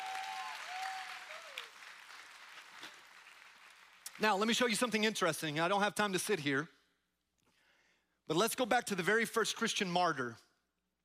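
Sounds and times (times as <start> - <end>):
audience applause: 0.0 - 4.4
speech: 4.2 - 6.8, 8.3 - 10.4.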